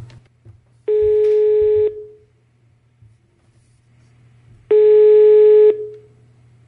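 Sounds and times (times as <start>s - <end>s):
telephone ringback tone while placing a call: 0.9s - 2.2s, 4.7s - 5.9s.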